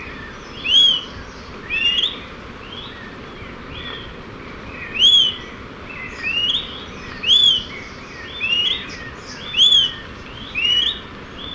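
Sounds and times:
Smoke-colored Pewee Contopus fumigatus ardosiacus whistled calls: 0:00.6 - 0:01.1, 0:01.7 - 0:02.2, 0:04.9 - 0:05.5, 0:06.2 - 0:07.7, 0:08.4 - 0:11.5.

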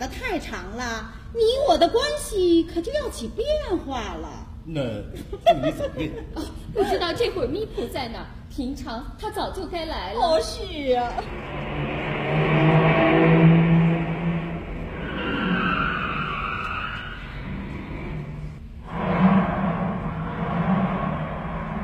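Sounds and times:
speech: 0:00.3 - 0:11.7
car engine roaring as it drives away: 0:11.2 - 0:21.8
tyres skidding: 0:11.3 - 0:21.8.

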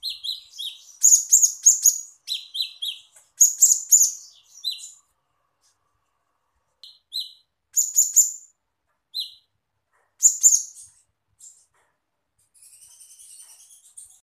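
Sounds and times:
small bird twittering: 0:00.0 - 0:05.1, 0:06.8 - 0:08.5, 0:09.1 - 0:09.5, 0:10.1 - 0:11.7, 0:12.5 - 0:14.2.

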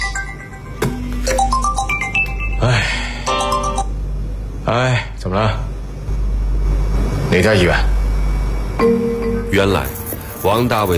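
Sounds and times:
electronic phone ringtone for an incoming call: 0:00.0 - 0:03.9, 0:08.8 - 0:09.7
low hum: 0:00.0 - 0:10.9
speech: 0:02.6 - 0:03.0, 0:04.7 - 0:05.6, 0:07.3 - 0:08.0, 0:08.8 - 0:10.9.

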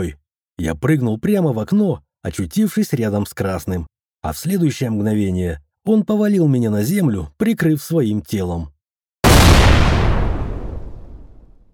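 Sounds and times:
speech: 0:00.0 - 0:08.7
loud explosion in a room with deep rumbling roar: 0:09.2 - 0:11.7.

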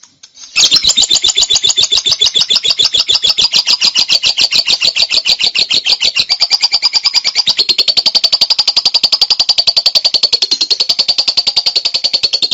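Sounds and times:
buzzy bird song pulses: 0:00.4 - 0:12.5.

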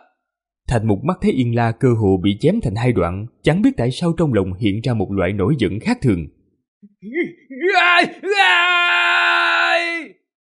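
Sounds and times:
speech: 0:00.7 - 0:06.4, 0:07.0 - 0:10.2
man roaring angrily: 0:07.0 - 0:10.1.

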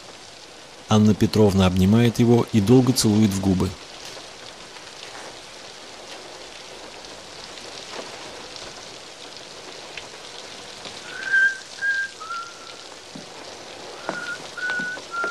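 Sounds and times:
steady rain falling outside: 0:00.0 - 0:15.3
speech: 0:00.9 - 0:03.8
man whistling clear high notes: 0:11.1 - 0:12.8, 0:14.0 - 0:15.3.

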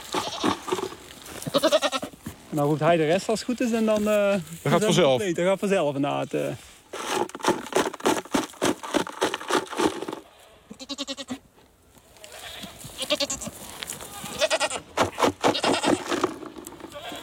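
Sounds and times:
herd of white-and-black goats bleating: 0:00.0 - 0:00.8, 0:01.4 - 0:02.2, 0:10.3 - 0:11.4, 0:12.2 - 0:16.2, 0:16.8 - 0:17.2
rustling: 0:00.0 - 0:10.5, 0:11.6 - 0:17.2
speech: 0:02.6 - 0:06.7.

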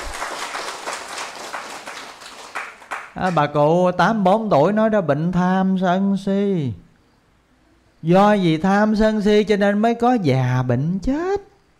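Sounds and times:
audience applauding at a Buddhist sutra lecture: 0:00.0 - 0:03.4
speech: 0:03.2 - 0:06.8, 0:08.0 - 0:11.5.

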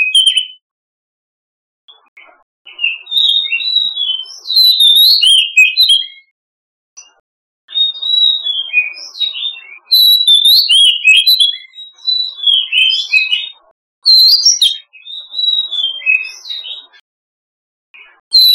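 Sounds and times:
Oriental magpie-robin song with rich whistles and sweeping notes: 0:00.0 - 0:00.6, 0:02.7 - 0:06.3, 0:07.7 - 0:17.0, 0:18.0 - 0:18.5.

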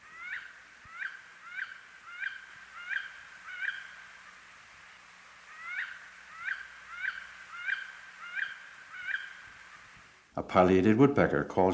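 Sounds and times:
female wood duck crying in flight through trees: 0:00.0 - 0:04.4, 0:05.4 - 0:10.0
speech: 0:10.4 - 0:11.7.

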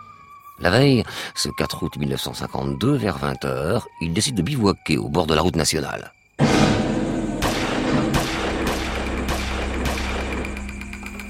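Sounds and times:
speech: 0:00.6 - 0:06.2
gunshots at night at a roadside camp in southern France: 0:06.4 - 0:10.6
dense steady rumbling background: 0:06.4 - 0:11.2.

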